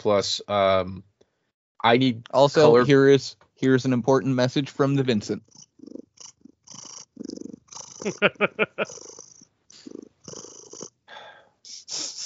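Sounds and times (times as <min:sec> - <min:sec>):
speech: 0:00.0 - 0:01.1, 0:01.8 - 0:06.0, 0:08.0 - 0:09.2
laughter: 0:02.6 - 0:03.0, 0:08.1 - 0:08.9
cat purring: 0:05.2 - 0:11.0
breathy hisses: 0:05.5 - 0:10.5, 0:11.1 - 0:12.2.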